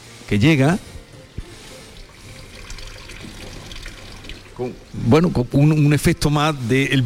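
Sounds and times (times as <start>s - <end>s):
speech: 0.3s - 0.9s, 4.6s - 7.0s
water trickling from a small nativity scene fountain: 1.9s - 6.0s.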